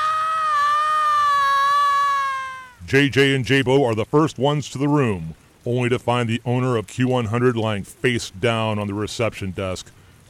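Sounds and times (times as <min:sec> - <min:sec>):
woman's high piercing scream in a lobby: 0:00.0 - 0:02.8
speech: 0:02.9 - 0:10.0.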